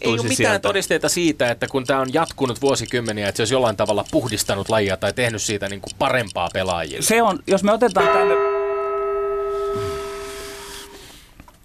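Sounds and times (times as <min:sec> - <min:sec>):
speech: 0:00.0 - 0:08.5
struck gong ringing with a bright metallic tone: 0:08.0 - 0:11.0.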